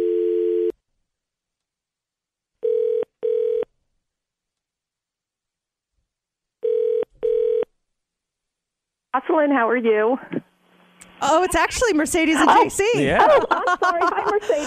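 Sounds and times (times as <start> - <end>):
telephone dial tone: 0.0 - 0.7, 2.6 - 3.7, 6.6 - 7.7
speech: 9.2 - 10.4, 11.2 - 14.6
laughter: 12.3 - 14.6.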